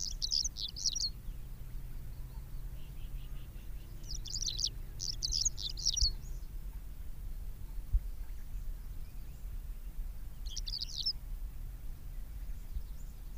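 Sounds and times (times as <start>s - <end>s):
Javan bush lark chattering song: 0.0s - 1.2s, 2.2s - 6.4s, 10.4s - 11.1s
low steady rumble: 0.0s - 13.3s.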